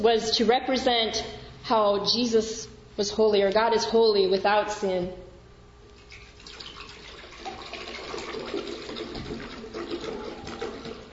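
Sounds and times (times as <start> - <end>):
speech: 0.0 - 5.2
liquid pouring quickly into a glass: 6.0 - 11.1.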